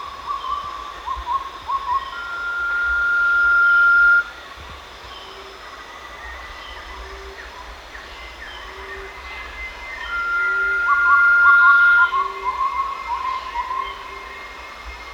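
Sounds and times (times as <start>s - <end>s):
blue-banded pitta whistle calls at Danum: 0.2s - 4.4s, 9.8s - 14.4s.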